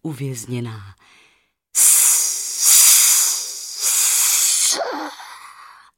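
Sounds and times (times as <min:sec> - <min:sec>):
speech: 0:00.0 - 0:01.2
flames hissing as they are doused with water: 0:01.8 - 0:05.1.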